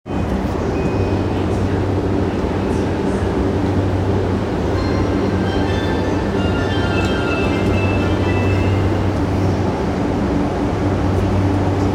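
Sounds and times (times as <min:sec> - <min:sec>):
subway train sounds at Yotsuya station: 0:00.1 - 0:11.9.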